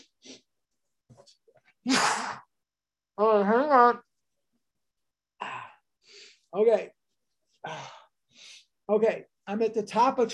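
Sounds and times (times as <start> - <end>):
soft sniffs: 0.0 - 0.5
loud explosive sneeze: 1.9 - 2.5
speech: 3.2 - 4.1, 6.5 - 7.0, 8.9 - 10.3.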